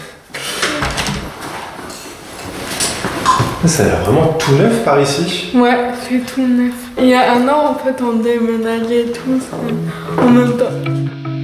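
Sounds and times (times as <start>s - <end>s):
door being closed with a scraping, sliding sound: 0.4s - 1.8s
speech: 3.6s - 11.2s.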